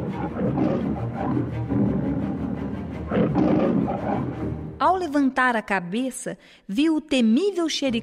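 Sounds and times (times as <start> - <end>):
tiger roaring with deep rumbling growls: 0.0 - 4.6
speech: 3.3 - 8.0.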